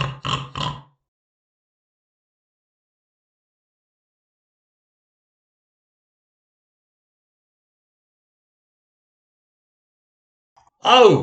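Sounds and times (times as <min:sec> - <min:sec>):
big fat female pig grunting: 0:00.0 - 0:00.9
speech: 0:10.8 - 0:11.2.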